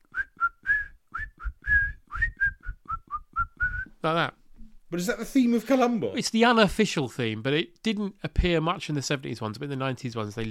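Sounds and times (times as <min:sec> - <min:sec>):
person whistling a nursery rhyme melody: 0:00.0 - 0:03.9
speech: 0:04.0 - 0:10.4.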